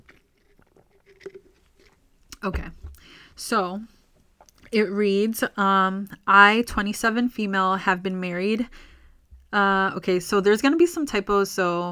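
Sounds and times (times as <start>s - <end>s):
slurping coffee: 0.0s - 3.4s
small wet gulps of coffee: 0.0s - 4.8s
speech: 2.4s - 2.8s, 3.4s - 4.0s, 4.7s - 8.9s, 9.5s - 11.9s.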